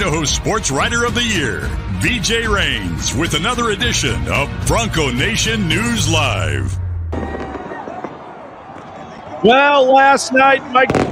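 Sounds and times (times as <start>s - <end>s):
speech: 0.0s - 6.8s, 9.4s - 11.0s
fireworks bursts crackling and popping: 7.2s - 8.9s, 10.9s - 11.0s
busy noisy background at a resort and casino: 7.2s - 11.0s.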